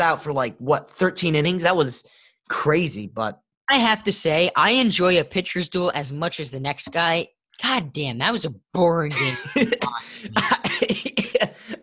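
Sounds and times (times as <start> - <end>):
speech: 0.0 - 10.7
person coughing rough raspy coughs: 9.2 - 11.8.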